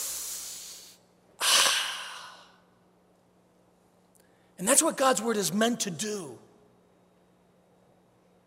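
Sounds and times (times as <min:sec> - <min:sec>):
deep breath of fresh air drawn in through the nose: 0:00.0 - 0:02.5
speech: 0:04.6 - 0:06.5.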